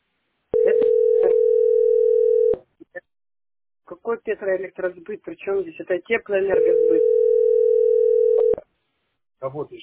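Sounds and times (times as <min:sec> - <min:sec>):
telephone ringing tone while placing a call: 0:00.6 - 0:02.6, 0:06.5 - 0:08.6
speech: 0:04.1 - 0:07.4, 0:09.4 - 0:09.8.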